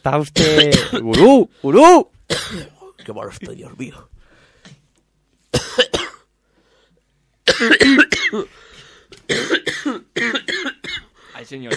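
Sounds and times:
speech: 0:00.0 - 0:04.1, 0:07.6 - 0:10.5, 0:11.4 - 0:11.7
person coughing hard: 0:00.4 - 0:01.4, 0:02.3 - 0:03.7, 0:05.5 - 0:06.3, 0:07.4 - 0:11.7.

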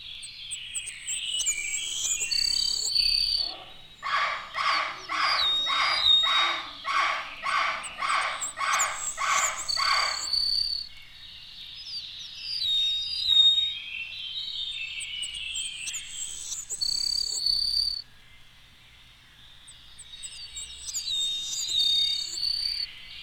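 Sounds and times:
eastern meadowlark whistling: 0:00.0 - 0:18.0, 0:19.7 - 0:23.2
savannah sparrow singing: 0:00.0 - 0:18.0, 0:19.7 - 0:23.2.

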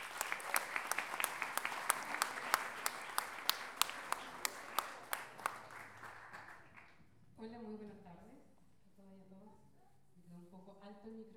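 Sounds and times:
audience applause at a book launch event: 0:00.0 - 0:06.9.

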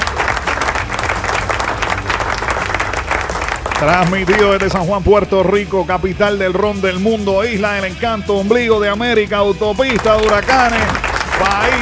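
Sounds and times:
applause sound effect of a crowd clapping on a radio show: 0:00.0 - 0:04.9, 0:09.8 - 0:11.8
speech: 0:03.8 - 0:11.8.

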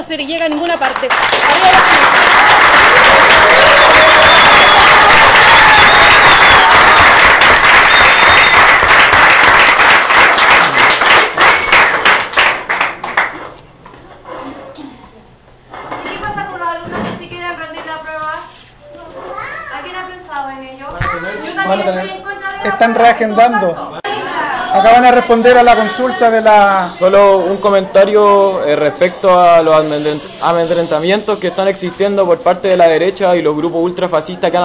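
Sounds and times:
speech: 0:00.0 - 0:05.4, 0:21.7 - 0:23.9, 0:24.8 - 0:34.6
crowd applauding at a press briefing for a student protest movement: 0:00.5 - 0:13.4
crowd cheering at a press briefing: 0:01.3 - 0:12.4.

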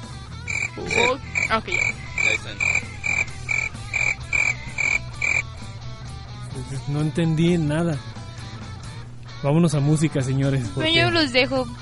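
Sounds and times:
crickets chirping: 0:00.4 - 0:05.5
speech: 0:00.8 - 0:02.8, 0:06.6 - 0:08.1, 0:09.4 - 0:11.8.

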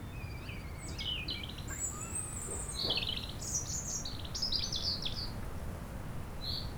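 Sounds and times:
European robin singing on a sunny lawn by the beach in Chindrieux France: 0:00.1 - 0:03.9
wind murmuring in the trees: 0:00.7 - 0:06.7.

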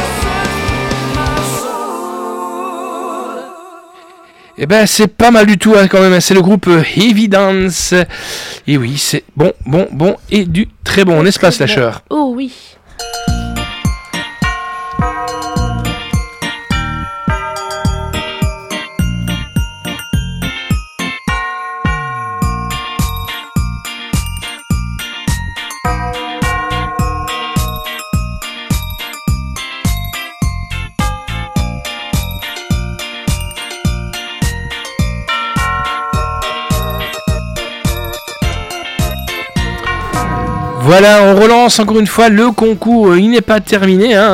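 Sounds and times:
steady rhythmic musical backing: 0:00.0 - 0:02.6, 0:13.0 - 0:41.3
speech: 0:04.6 - 0:13.4, 0:40.9 - 0:44.3
Christmas-style jingle bells shaking: 0:13.0 - 0:40.2.

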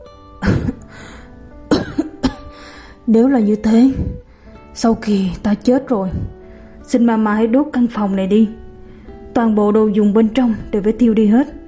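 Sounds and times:
woman coughing dryly: 0:00.4 - 0:00.8, 0:01.7 - 0:02.6
faint breath between coughs: 0:00.8 - 0:01.4, 0:02.5 - 0:03.0, 0:04.0 - 0:04.7, 0:06.3 - 0:06.8, 0:08.8 - 0:09.3
speech: 0:03.1 - 0:04.2, 0:04.8 - 0:08.6, 0:09.4 - 0:11.6.

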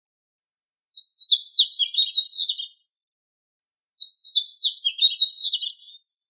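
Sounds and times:
bird song of high warbling chirps and trills: 0:00.4 - 0:02.8, 0:03.7 - 0:06.0.

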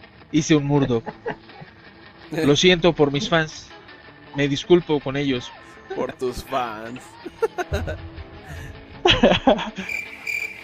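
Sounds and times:
speech: 0:00.3 - 0:01.4, 0:02.3 - 0:03.7, 0:04.4 - 0:10.1
laughter: 0:05.9 - 0:10.0
crickets chirping sound effect: 0:09.8 - 0:10.6.

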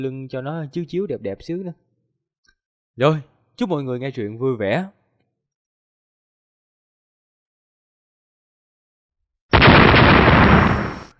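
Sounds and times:
speech: 0:00.0 - 0:01.9, 0:03.0 - 0:05.0
loud explosion: 0:09.5 - 0:11.1.

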